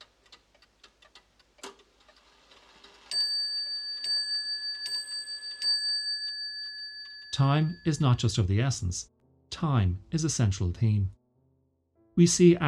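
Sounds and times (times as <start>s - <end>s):
numerous clocks ticking out of step inside a manor: 0.0s - 8.7s
speech: 7.4s - 11.2s, 12.2s - 12.6s.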